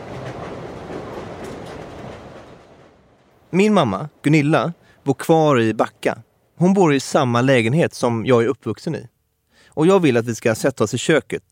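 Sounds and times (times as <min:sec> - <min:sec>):
train rumbling heard from inside a carriage: 0:00.0 - 0:06.2
speech: 0:03.5 - 0:09.1, 0:09.8 - 0:11.4.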